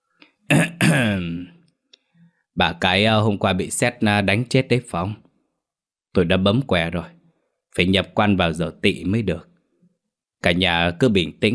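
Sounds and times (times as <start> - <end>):
man clearing his throat: 0.5 - 1.5
speech: 2.6 - 5.2, 6.1 - 7.2, 7.8 - 9.5, 10.4 - 11.5.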